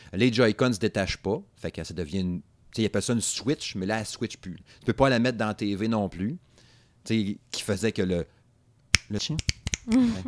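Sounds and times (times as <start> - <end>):
speech: 0.1 - 8.4, 9.1 - 10.2
finger snap: 8.9 - 10.1.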